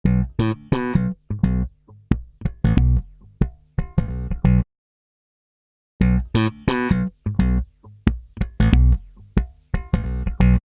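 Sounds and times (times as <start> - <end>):
slap bass: 0.0 - 4.6, 6.0 - 10.6.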